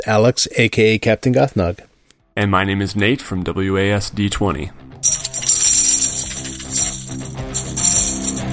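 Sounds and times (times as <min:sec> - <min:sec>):
speech: 0:00.0 - 0:05.2
busy music track with layered instruments: 0:04.4 - 0:08.5
tambourine jingling: 0:05.0 - 0:08.5.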